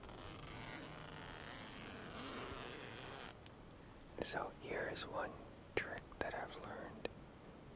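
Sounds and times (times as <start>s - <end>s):
tent zipper being opened: 0.0s - 3.4s
speech: 4.2s - 7.0s.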